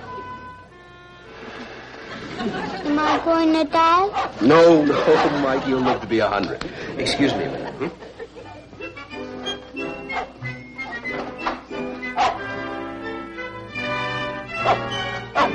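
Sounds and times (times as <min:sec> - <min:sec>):
steady tonal background: 0:00.0 - 0:15.5
laughter: 0:02.0 - 0:03.2, 0:04.4 - 0:08.9
speech: 0:02.4 - 0:08.1
dog barking: 0:03.0 - 0:03.4, 0:04.1 - 0:06.0, 0:10.1 - 0:10.4, 0:11.4 - 0:12.5, 0:14.6 - 0:15.5.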